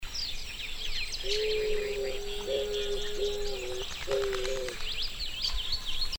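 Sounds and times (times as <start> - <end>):
small birds chirping and twittering: 0.0 - 6.1
Eared dove cooing: 1.2 - 4.9.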